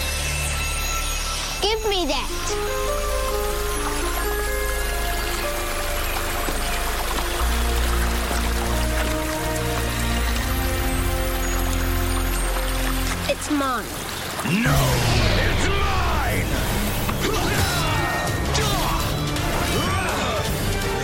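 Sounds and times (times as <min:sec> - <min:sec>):
creek water babbling and splashing: 0:00.0 - 0:21.0
speech: 0:01.6 - 0:03.2, 0:13.5 - 0:15.2.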